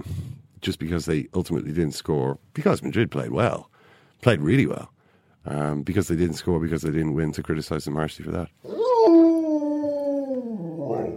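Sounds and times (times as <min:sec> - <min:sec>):
speech: 0:00.6 - 0:08.8
wolf howl sound effect jingle: 0:08.7 - 0:11.1.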